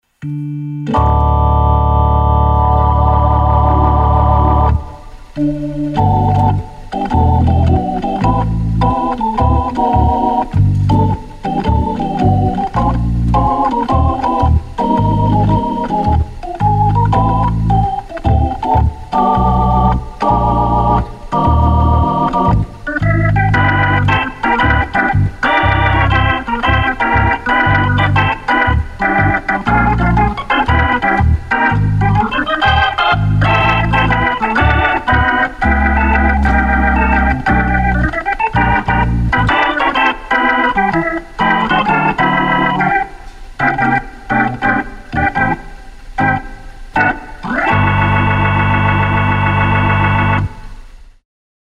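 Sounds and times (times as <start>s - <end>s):
pop music with Hammond organ: 0.2s - 51.0s.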